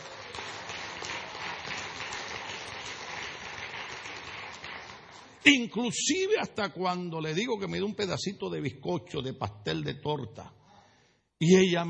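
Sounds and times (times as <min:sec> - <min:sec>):
audience applause: 0:00.0 - 0:05.4
speech: 0:05.5 - 0:10.6, 0:11.4 - 0:11.8.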